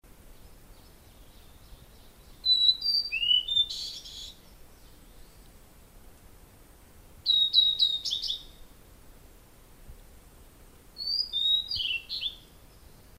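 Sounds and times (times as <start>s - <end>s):
blue-and-white flycatcher singing: 0.3s - 5.6s, 7.2s - 8.7s, 11.0s - 13.1s.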